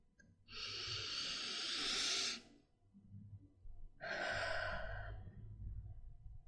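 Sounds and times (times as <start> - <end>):
deep breaths during a guided breathing exercise: 0.5 - 2.5, 4.0 - 5.8.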